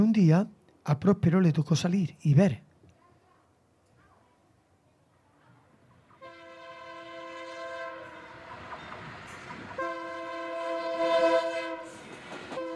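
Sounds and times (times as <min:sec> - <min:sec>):
speech: 0:00.0 - 0:02.7
low rumble of the moving train: 0:06.0 - 0:12.7
train horn sounding as a train departs a station: 0:06.2 - 0:08.5, 0:09.8 - 0:12.7.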